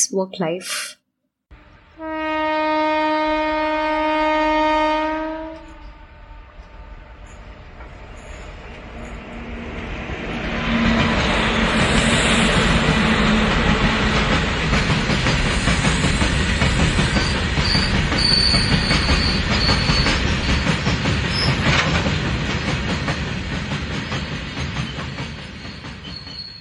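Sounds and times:
speech: 0.0s - 1.0s
train horn: 1.5s - 6.8s
rumble of a train pulling away: 3.3s - 26.5s
high metallic train wheel squeals on rails: 5.6s - 9.6s, 10.4s - 22.1s, 23.8s - 26.5s.

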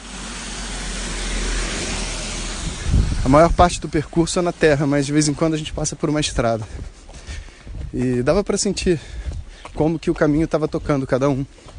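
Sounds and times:
steady broadband rush of road noise: 0.0s - 11.7s
speech: 3.2s - 7.0s, 7.9s - 9.2s, 9.8s - 11.7s.

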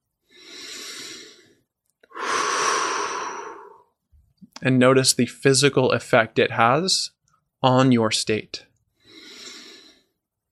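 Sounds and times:
deep belly breaths: 0.2s - 4.0s, 9.0s - 10.2s
speech: 4.6s - 8.7s.

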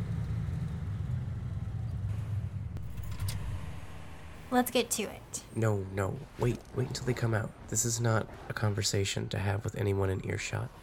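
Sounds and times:
car engine rumbling as the car arrives: 0.0s - 7.2s
sharp click: 2.8s - 3.8s
speech: 4.5s - 10.8s.

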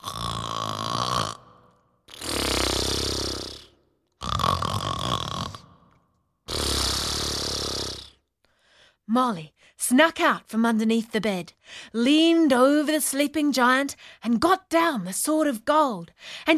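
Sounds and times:
person imitating loud rasping snoring: 0.0s - 8.2s
speech: 9.2s - 16.5s.

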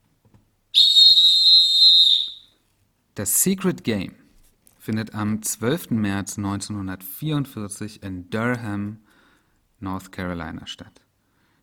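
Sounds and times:
referee pea whistle blast: 0.8s - 2.5s
speech: 3.2s - 4.2s, 4.8s - 9.1s, 9.8s - 11.0s.

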